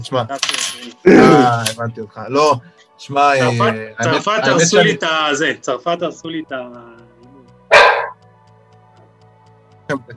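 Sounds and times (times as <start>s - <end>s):
speech: 0.0s - 7.1s, 9.9s - 10.1s
female pet dog barking: 7.7s - 8.2s.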